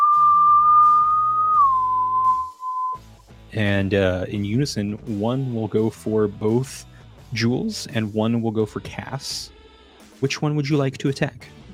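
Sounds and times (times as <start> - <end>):
long steady whistle: 0.0 - 3.0
soft instrumental music: 0.0 - 11.7
speech: 3.6 - 9.6, 10.2 - 11.6.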